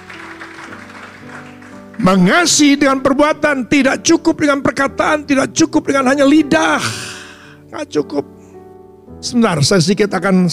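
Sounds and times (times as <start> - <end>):
audience clapping as applause for Jesus: 0.0 - 2.7
speech: 2.0 - 7.0, 7.7 - 8.4, 9.2 - 10.5.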